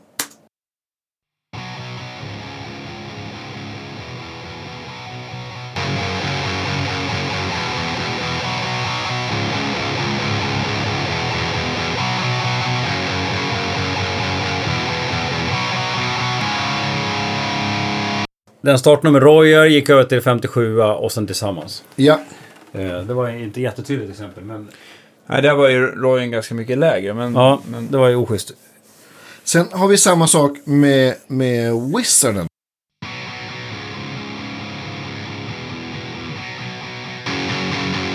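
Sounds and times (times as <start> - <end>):
heavily distorted electric guitar riff through a high-gain 6505 amp: 1.6 - 18.2, 33.1 - 38.1
speech: 18.6 - 28.6, 29.5 - 32.5.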